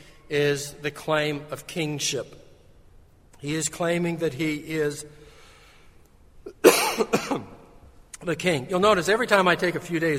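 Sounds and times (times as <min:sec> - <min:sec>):
speech: 0:00.3 - 0:02.4, 0:03.4 - 0:05.2, 0:08.2 - 0:10.1
man coughing from the pulpit during a sermon: 0:06.5 - 0:07.6.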